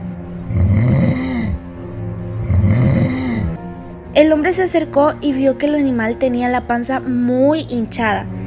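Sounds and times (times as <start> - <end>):
sleeping wolf snoring loudly in a garden: 0.3 - 3.7
speech: 4.2 - 8.4.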